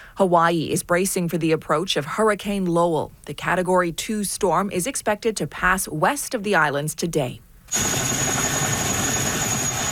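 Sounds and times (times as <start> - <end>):
speech: 0.2 - 8.2
National Guard helicopter flying in Hawaii carrying troops and supplies: 7.7 - 9.9
thin high whine of helicopter engine: 7.7 - 9.9.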